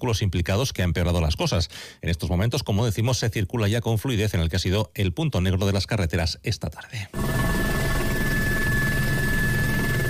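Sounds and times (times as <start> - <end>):
speech: 0.0 - 7.6
firefighting helicopter rotor and engine roar inside the cabin: 7.2 - 10.0.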